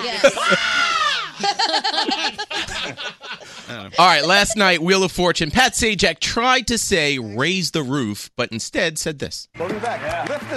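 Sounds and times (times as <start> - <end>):
speech: 0.0 - 3.2, 3.9 - 10.5
laughter: 0.0 - 4.7
person screaming: 0.2 - 1.4.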